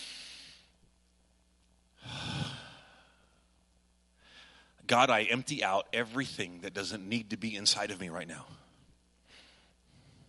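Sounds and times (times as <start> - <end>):
deep breath taken during a prayer: 2.0 - 3.4, 4.2 - 4.8, 9.2 - 10.2
speech: 4.9 - 8.6.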